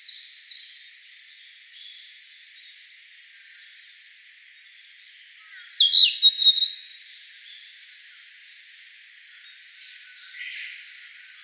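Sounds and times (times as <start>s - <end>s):
Narcissus flycatcher giving a phrase of bright whistled notes: 5.6s - 6.7s.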